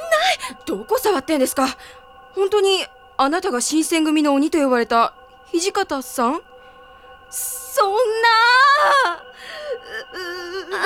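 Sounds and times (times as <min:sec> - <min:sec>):
person crying and sobbing: 0:00.0 - 0:00.5, 0:09.8 - 0:10.8
speech: 0:00.7 - 0:06.5, 0:07.3 - 0:10.8.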